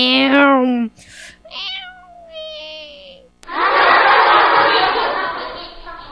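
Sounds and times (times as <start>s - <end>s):
cat meowing: 1.5s - 2.7s
laughter: 3.5s - 6.1s.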